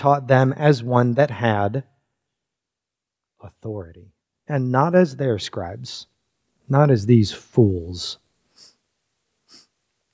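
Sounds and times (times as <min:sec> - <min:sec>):
speech: 0:00.0 - 0:01.9, 0:03.4 - 0:06.1, 0:06.7 - 0:08.2
short breathy sniffs: 0:08.4 - 0:09.8.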